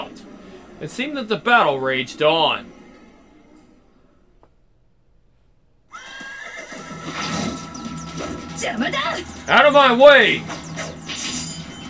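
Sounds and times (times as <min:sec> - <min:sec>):
speech: 0:00.8 - 0:02.8, 0:08.6 - 0:10.6
horse neighing and whinnying: 0:05.9 - 0:07.5.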